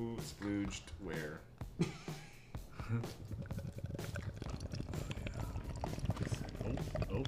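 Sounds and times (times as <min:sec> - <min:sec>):
speech: 0:00.0 - 0:02.2, 0:02.9 - 0:03.7
beer from a can from Czechia pouring into a glass: 0:03.1 - 0:07.2.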